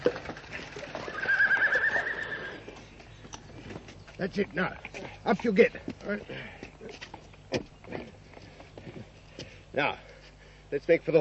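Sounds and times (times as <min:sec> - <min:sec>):
horse hooves clip-clopping: 0:00.0 - 0:10.4
busy noisy outdoor background: 0:00.0 - 0:11.1
horse whinnying loudly and shrilly: 0:00.8 - 0:02.8
speech: 0:04.2 - 0:06.7, 0:09.8 - 0:10.1, 0:10.7 - 0:11.1.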